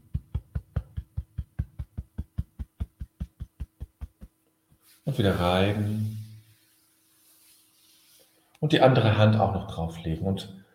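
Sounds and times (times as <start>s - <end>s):
hand tapping on one's own chest over the heart: 0.0s - 4.9s
speech: 5.0s - 6.2s, 8.6s - 10.6s.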